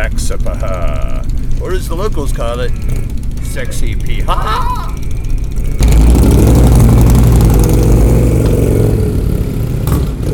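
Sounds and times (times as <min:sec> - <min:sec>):
motorcycle engine idling: 0:00.0 - 0:10.3
speech: 0:00.3 - 0:05.0
laughter: 0:04.1 - 0:05.2.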